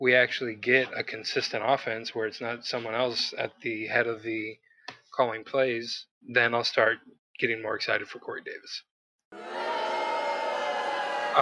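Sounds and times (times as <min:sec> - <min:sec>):
speech: 0:00.0 - 0:08.9
crowd booing loudly: 0:09.3 - 0:11.3.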